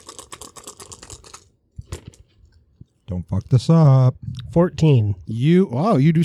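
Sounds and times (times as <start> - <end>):
dice rattling: 0.0 - 2.3
speech: 3.1 - 6.2.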